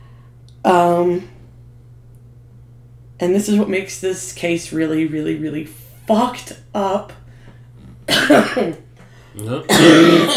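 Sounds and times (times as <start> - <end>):
low steady hum: 0.0 - 10.3
speech: 0.6 - 1.4, 3.2 - 7.2, 8.1 - 8.8, 9.4 - 10.3
harsh throaty coughs: 8.1 - 8.8, 9.6 - 10.3.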